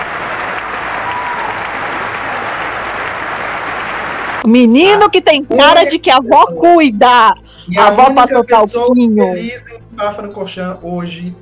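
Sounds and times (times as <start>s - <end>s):
crowd applauding: 0.0s - 5.1s
speech: 4.4s - 11.4s.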